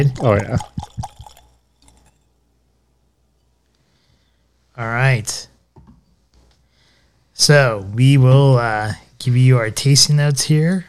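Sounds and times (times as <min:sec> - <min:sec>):
speech: 0:00.0 - 0:00.8, 0:04.8 - 0:05.5, 0:07.4 - 0:10.8
whisky pouring into a glass: 0:00.2 - 0:02.3
quiet whisky drips and trickles: 0:00.3 - 0:02.3.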